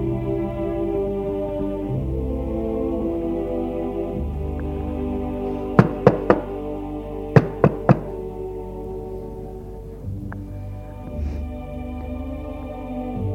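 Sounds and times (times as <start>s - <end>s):
steady sustained musical background: 0.0s - 13.3s
sharp raps on a door: 7.4s - 8.1s.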